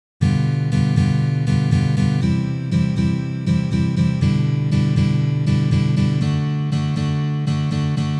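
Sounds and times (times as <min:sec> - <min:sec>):
G7 chord exercise: 0:00.2 - 0:08.1.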